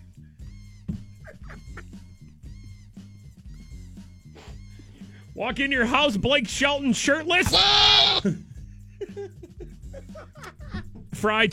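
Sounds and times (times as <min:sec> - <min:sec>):
laughter: 0:01.1 - 0:02.2, 0:07.6 - 0:10.9
speech: 0:05.4 - 0:08.4, 0:11.2 - 0:11.5
male goat bleating: 0:07.4 - 0:08.3.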